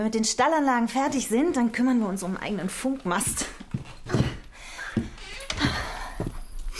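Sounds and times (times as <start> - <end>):
speech: 0.0 - 4.2
door opening in front of the house: 4.0 - 6.6.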